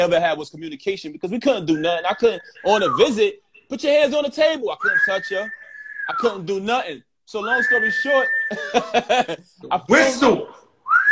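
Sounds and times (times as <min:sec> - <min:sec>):
speech: 0:00.0 - 0:10.6
person whistling a rising note: 0:01.7 - 0:03.7, 0:04.8 - 0:06.4, 0:07.4 - 0:08.8, 0:10.8 - 0:11.1
laughter: 0:08.5 - 0:09.6.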